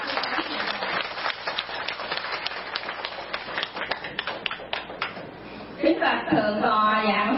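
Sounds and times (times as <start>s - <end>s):
crowd of Buddhist lay followers applauding at a temple: 0.0s - 5.2s
speech: 6.1s - 7.2s.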